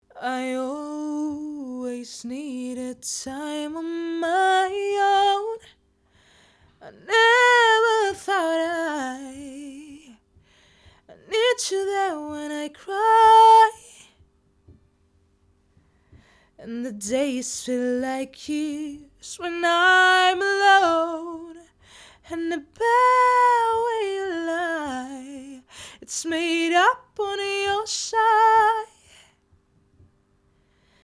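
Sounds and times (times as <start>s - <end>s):
lead vocal: 0.1s - 5.7s, 6.8s - 10.2s, 11.1s - 14.1s, 16.6s - 29.3s.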